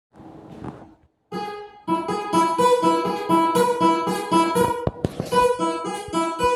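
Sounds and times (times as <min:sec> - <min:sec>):
guitar: 0:01.3 - 0:06.5.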